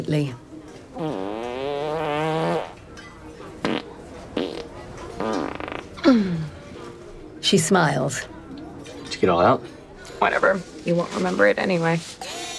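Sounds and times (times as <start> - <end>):
speech: 0.0 - 0.4, 1.0 - 1.3, 6.1 - 6.4, 7.5 - 8.3, 9.2 - 12.3
long loud croaking burp: 1.0 - 2.8, 3.6 - 6.2.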